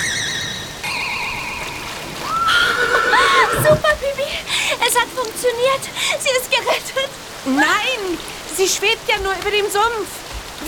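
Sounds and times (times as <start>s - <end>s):
rising whistling glide: 0.0s - 3.8s
steady watery background: 0.0s - 10.6s
horse whinnying in shaky quavering neighs: 2.2s - 4.0s
speech: 5.4s - 10.2s.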